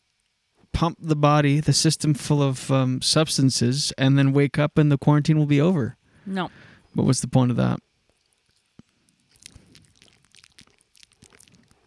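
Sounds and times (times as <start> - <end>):
speech: 0.8 - 7.9
mouth chewing gum with wet sticky smacks: 8.1 - 11.8.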